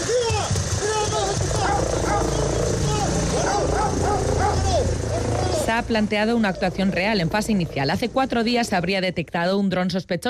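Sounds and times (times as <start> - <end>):
indistinct voices: 0.0 - 9.5
police dogs barking and yelping: 1.1 - 5.7
speech: 5.8 - 10.2.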